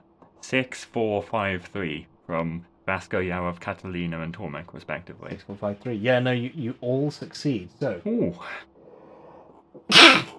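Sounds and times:
speech: 0:00.5 - 0:08.7
sneeze: 0:09.8 - 0:10.3.

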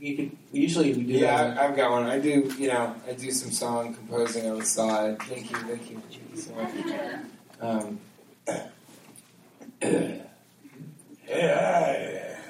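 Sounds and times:
speech: 0:00.0 - 0:08.7, 0:09.8 - 0:10.2
person clearing throat: 0:08.4 - 0:08.8, 0:09.6 - 0:10.9.

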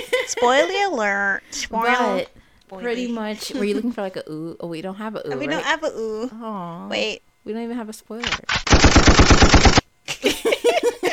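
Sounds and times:
speech: 0:00.3 - 0:08.8
automatic gunfire sound effect: 0:08.5 - 0:09.8
laughter: 0:10.1 - 0:11.1.

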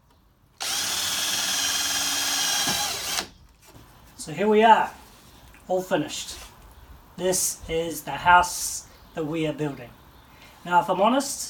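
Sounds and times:
power drill whirring: 0:00.6 - 0:03.3
speech: 0:04.2 - 0:05.0, 0:05.7 - 0:06.4, 0:07.2 - 0:10.0, 0:10.6 - 0:11.4.

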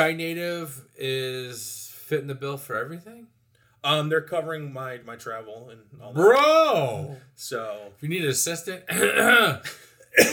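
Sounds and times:
speech: 0:00.0 - 0:10.3
short odd-sounding cough: 0:08.9 - 0:10.3.

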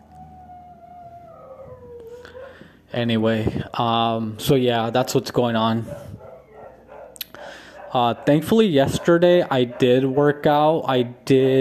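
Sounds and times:
neighbor's dog howling mournfully: 0:00.0 - 0:02.7, 0:05.8 - 0:10.7
speech: 0:02.9 - 0:06.1, 0:07.9 - 0:11.5.

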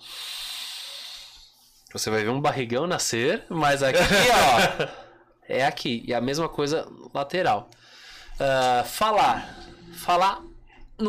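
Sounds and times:
deep breath in: 0:00.0 - 0:01.8, 0:07.8 - 0:08.4
speech: 0:01.9 - 0:11.0
laughter: 0:04.0 - 0:05.0.

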